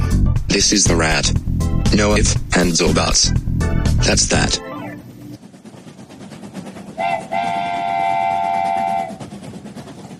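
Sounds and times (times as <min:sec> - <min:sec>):
moving train rumbling: 0:00.0 - 0:10.1
speech: 0:00.5 - 0:04.7
train whistle: 0:07.0 - 0:09.3.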